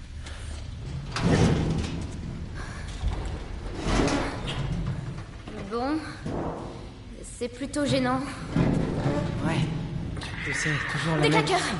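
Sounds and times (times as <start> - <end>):
heavy metal security door grinding and clanking as it is forced upward: 1.0 - 5.6, 8.5 - 11.5
speech: 7.4 - 8.7, 9.4 - 9.8, 10.4 - 11.7.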